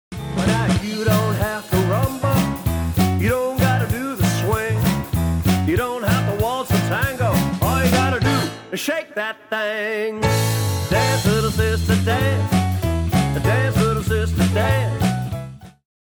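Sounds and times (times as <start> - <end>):
dance music bridge: 0.5 - 9.0, 10.2 - 15.3.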